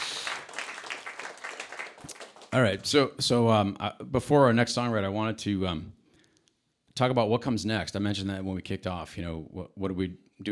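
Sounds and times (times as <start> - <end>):
audience clapping: 0.0 - 2.9
speech: 2.5 - 6.0, 7.0 - 10.5.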